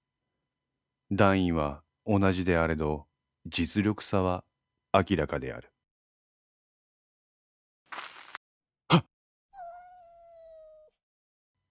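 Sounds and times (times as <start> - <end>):
speech: 1.1 - 5.7
rustling scrape: 7.9 - 8.4
cat yowling: 9.6 - 11.0.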